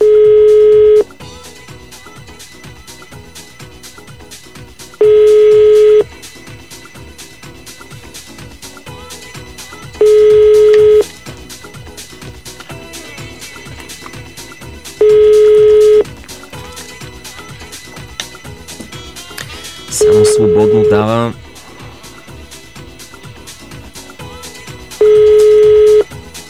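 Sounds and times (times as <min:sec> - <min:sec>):
telephone ringback tone from a call placed during a radio program: 0:00.0 - 0:01.1, 0:05.0 - 0:06.1, 0:10.0 - 0:11.1, 0:15.0 - 0:16.1, 0:19.9 - 0:21.2, 0:25.0 - 0:26.1.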